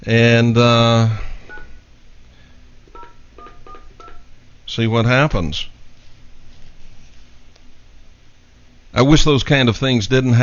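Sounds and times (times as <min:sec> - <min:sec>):
speech: 0:00.0 - 0:01.2, 0:04.7 - 0:05.8, 0:09.0 - 0:10.4
steady hiss: 0:00.0 - 0:10.4
touch-tone keypad beeps dialing a phone number by hand: 0:03.0 - 0:04.2.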